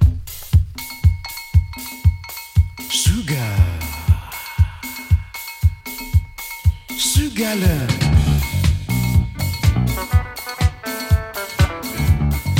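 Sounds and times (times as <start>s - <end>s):
Cameroonian pop song with punchy bass-drum beat and synth tones: 0.0s - 12.5s
person singing a short word: 2.9s - 5.7s, 6.7s - 8.5s
speech: 7.4s - 8.0s.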